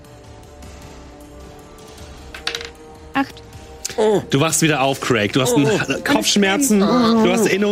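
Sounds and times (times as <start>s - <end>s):
dice rolled clattering on a hard surface: 2.3s - 2.8s
speech: 3.2s - 7.7s.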